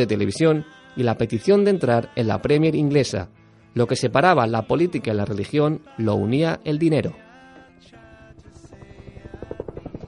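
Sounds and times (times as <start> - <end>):
speech: 0.0 - 7.2
helicopter flying overhead: 8.0 - 10.0.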